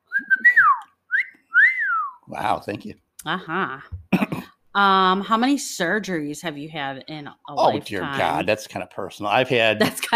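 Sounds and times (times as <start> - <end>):
person whistling a short tune: 0.0 - 2.2
speech: 2.3 - 10.1.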